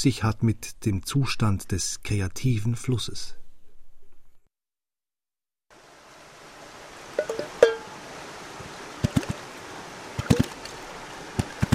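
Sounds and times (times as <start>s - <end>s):
speech: 0.0s - 3.4s
forest stream flowing: 5.7s - 11.7s
old tin can struck on flowing water and on a stone: 7.1s - 8.0s, 9.0s - 9.5s, 10.2s - 11.7s.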